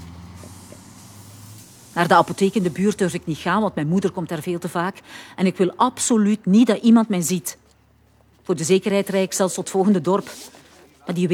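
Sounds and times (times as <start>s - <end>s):
hiss of bus air brakes: 0.0s - 2.1s
bus engine droning: 0.0s - 5.4s
speech: 2.0s - 7.6s, 8.5s - 11.3s.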